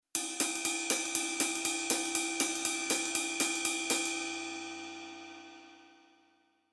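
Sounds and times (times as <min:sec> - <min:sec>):
rhythmic music: 0:00.2 - 0:04.6.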